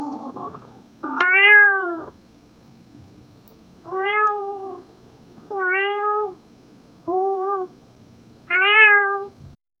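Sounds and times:
soothing cat noises: 0.0s - 2.2s, 3.8s - 4.9s, 5.5s - 6.4s, 7.0s - 7.8s, 8.4s - 9.4s.

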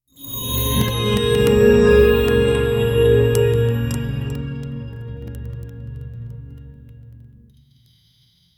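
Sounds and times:
soft wind chime harp: 0.1s - 5.4s.

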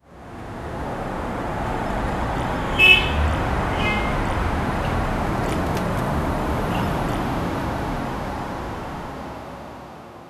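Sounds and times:
soft wind: 0.0s - 10.2s.

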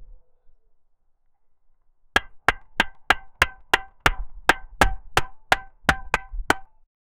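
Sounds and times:
tool hammering for repair: 2.2s - 6.8s.

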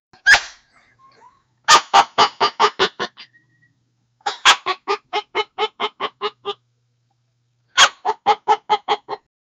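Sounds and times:
AI dog laugh: 0.3s - 3.4s, 4.3s - 6.6s, 7.8s - 9.3s.

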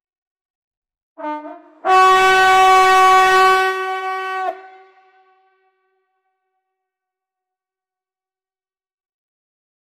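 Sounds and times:
ram's horn wind instrument blowing a call: 1.2s - 5.7s.

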